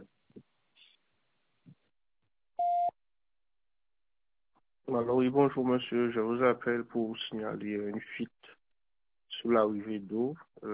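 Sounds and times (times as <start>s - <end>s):
voicemail beep: 2.6s - 2.9s
speech: 4.9s - 8.4s, 9.4s - 10.7s.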